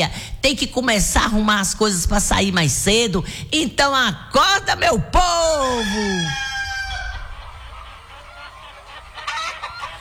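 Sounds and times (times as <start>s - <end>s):
speech: 0.0s - 6.5s
low rumble: 0.0s - 9.9s
hen clucking and squawking: 5.3s - 9.9s
rooster crowing: 5.5s - 9.9s.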